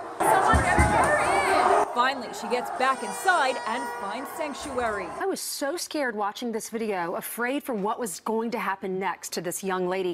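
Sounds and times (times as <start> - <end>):
dense hostile crowd screaming obscenities and shouting angrily: 0.0 - 5.3
speech: 2.1 - 10.1.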